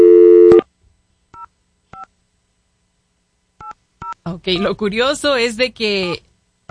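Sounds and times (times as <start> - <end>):
telephone ringing tone on the line of an unanswered call: 0.0 - 0.6
speech: 4.2 - 6.7.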